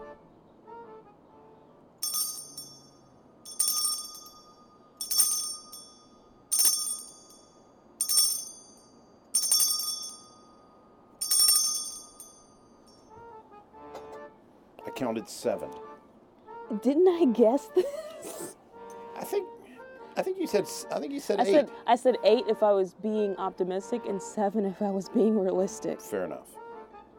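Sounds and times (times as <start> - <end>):
bright metallic chime ringing: 2.0 - 10.5, 11.2 - 13.0
speech: 15.0 - 15.9, 16.7 - 18.4, 19.2 - 19.5, 20.2 - 26.6.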